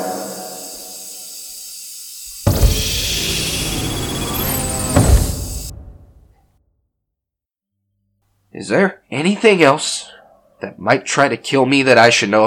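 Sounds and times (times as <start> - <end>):
loud sustained hissing rush of door sealing: 2.2 - 6.3
heavy door sliding shut and sealing: 2.4 - 6.4
speech: 8.6 - 12.4.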